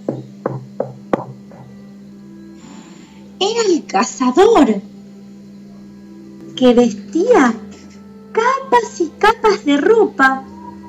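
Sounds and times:
firm knocking on a door: 0.0s - 1.8s
low steady hum: 0.0s - 10.8s
speech: 3.4s - 4.9s, 6.6s - 7.6s, 8.4s - 10.5s.

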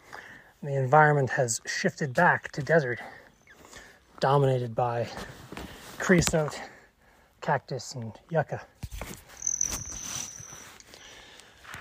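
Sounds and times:
faint outdoor background: 0.0s - 11.8s
speech: 0.6s - 3.2s, 4.2s - 5.4s, 6.0s - 6.7s, 7.4s - 9.2s
hummingbird wings buzzing: 9.4s - 10.4s.

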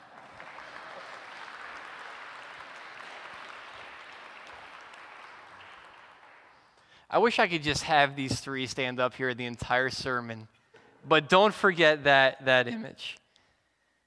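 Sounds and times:
large crowd applauding: 0.0s - 6.9s
speech: 7.1s - 13.2s.

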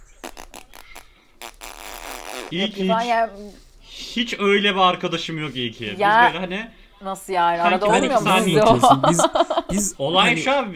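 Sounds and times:
voice imitating a long fart: 0.0s - 3.0s
speech: 2.5s - 10.7s
laughter: 7.7s - 10.5s.

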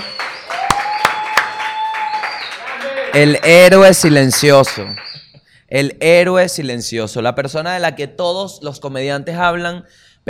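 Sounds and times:
small audience applause: 0.0s - 3.2s
speech: 3.1s - 5.1s, 5.7s - 10.2s.

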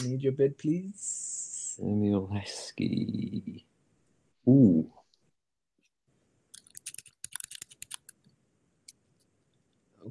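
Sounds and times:
speech: 0.0s - 3.7s, 4.4s - 5.0s
typing on a computer keyboard: 6.6s - 8.3s.

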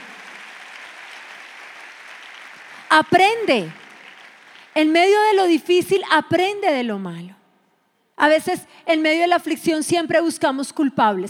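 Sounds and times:
audience applauding: 0.0s - 5.0s
speech: 2.9s - 3.8s, 4.8s - 7.4s, 8.2s - 11.2s.

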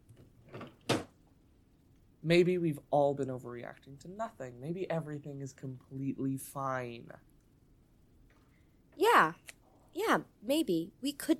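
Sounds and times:
drawer shutting with a sharp thump: 0.5s - 1.1s
speech: 2.2s - 7.3s, 9.0s - 11.3s.

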